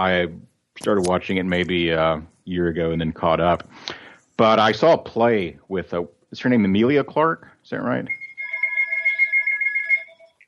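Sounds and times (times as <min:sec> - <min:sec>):
speech: 0:00.0 - 0:08.2
mobile phone ringtone: 0:08.1 - 0:10.4.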